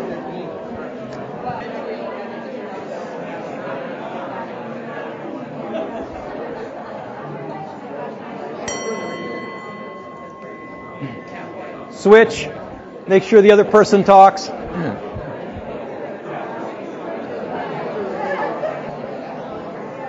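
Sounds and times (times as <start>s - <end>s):
overlapping chatter of a crowd in a room: 0.0s - 20.0s
single bell struck sharply with shimmering tone: 8.7s - 14.7s
speech: 12.0s - 15.1s.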